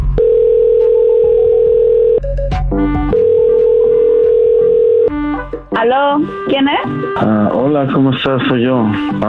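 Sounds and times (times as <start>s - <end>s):
telephone dial tone: 0.2s - 2.2s, 3.2s - 5.2s
speech: 5.8s - 9.2s.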